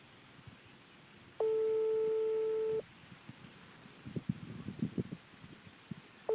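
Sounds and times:
telephone call tone beep: 0:01.4 - 0:02.8.

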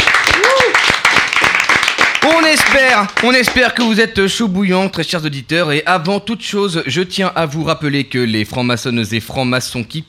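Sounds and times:
crowd clapping: 0:00.0 - 0:04.0
whoop or whistle: 0:00.3 - 0:00.8
speech: 0:02.7 - 0:10.0.

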